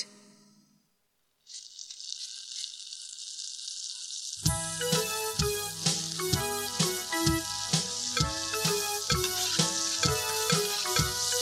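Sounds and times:
sausages sizzling in a frying pan: 1.4s - 11.3s
bouncy music with a regular beat: 4.4s - 11.3s.

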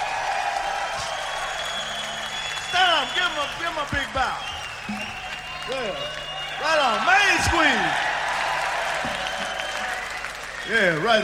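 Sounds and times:
live audience applause for a band: 0.0s - 11.2s
speech: 3.0s - 5.0s, 5.7s - 8.1s, 10.7s - 11.2s.

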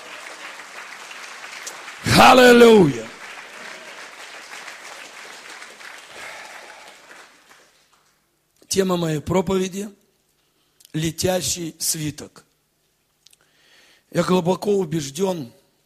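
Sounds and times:
congregation clapping: 0.0s - 8.2s
speech: 2.2s - 3.0s, 8.8s - 10.0s, 10.9s - 12.5s, 14.1s - 15.6s.

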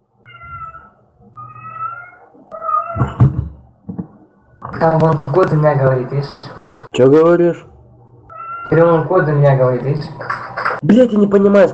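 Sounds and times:
cat meowing insistently: 0.2s - 3.2s, 8.3s - 8.9s
speech: 3.0s - 3.3s, 4.8s - 7.7s, 8.7s - 11.7s.

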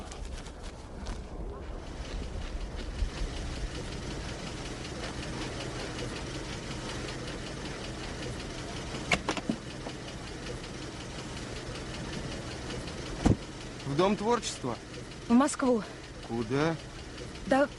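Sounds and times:
car engine idling before a ride: 0.1s - 17.7s
speech: 14.0s - 16.9s, 17.5s - 17.7s.

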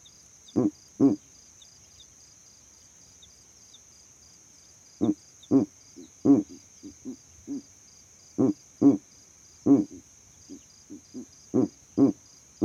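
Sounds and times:
owl hooting at night: 0.5s - 1.3s, 5.0s - 7.7s, 8.4s - 9.0s, 9.6s - 12.6s.

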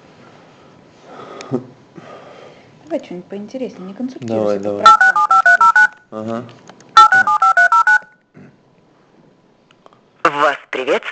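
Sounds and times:
speech: 1.5s - 2.1s, 2.9s - 5.2s, 6.1s - 6.7s, 10.8s - 11.1s
touch-tone beeps from pressing buttons on a phone keypad: 4.8s - 6.0s, 7.0s - 8.2s.

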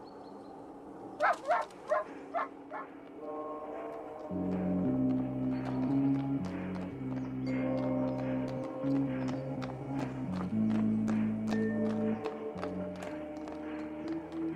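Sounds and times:
dog barking: 1.2s - 2.9s
sustained droning musical tone: 2.6s - 14.5s.

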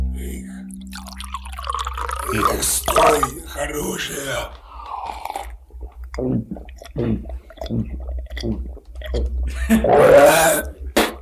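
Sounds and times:
steady low hum: 0.0s - 10.0s
drink pouring and splashing into a glass: 0.9s - 4.4s
speech: 2.3s - 4.6s, 6.2s - 10.7s.

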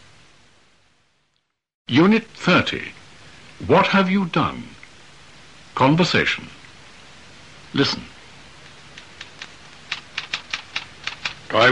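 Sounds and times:
speech: 1.9s - 3.0s, 3.6s - 4.8s, 5.8s - 6.6s, 7.7s - 8.1s
typewriter keys typing a letter: 9.0s - 11.4s.

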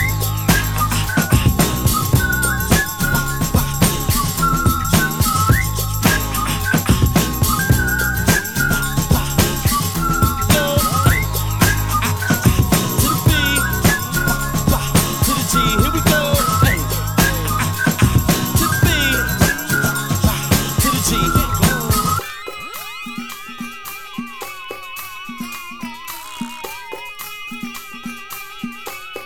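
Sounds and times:
person whistling a melody: 0.0s - 23.3s
busy loud musical beat: 0.0s - 29.2s
sparse light percussion: 0.0s - 29.2s.

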